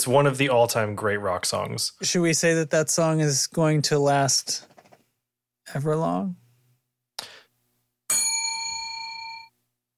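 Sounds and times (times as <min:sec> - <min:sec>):
speech: 0:00.0 - 0:04.7, 0:05.7 - 0:06.4
bright metallic bell ding: 0:08.1 - 0:09.5.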